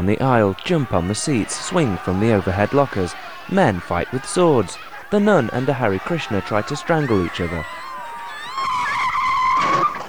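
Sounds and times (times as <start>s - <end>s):
speech: 0.0s - 7.8s
laughter: 0.0s - 9.8s
high wavering car tire squeal as a car pulls up: 7.6s - 10.0s.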